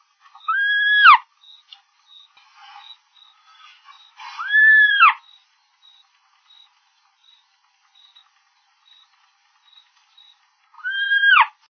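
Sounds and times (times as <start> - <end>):
Elf Owl call: 0.4 - 1.2, 3.5 - 5.2, 10.8 - 11.6.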